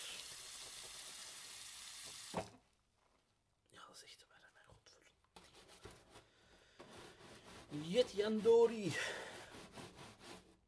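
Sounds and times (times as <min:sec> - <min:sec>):
water running into a sink: 0:00.0 - 0:02.6
speech: 0:03.9 - 0:04.3, 0:07.7 - 0:09.3.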